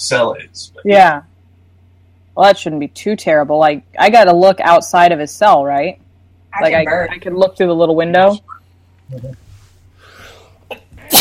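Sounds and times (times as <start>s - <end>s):
speech: 0.0s - 1.3s, 2.4s - 9.4s
quiet hum: 0.0s - 11.2s
person sneezing loudly: 10.2s - 11.2s.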